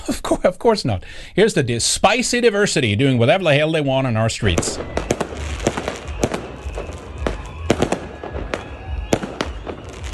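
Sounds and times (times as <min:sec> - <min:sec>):
speech: 0:00.1 - 0:05.8
fireworks banging outdoors on a street: 0:04.4 - 0:10.1.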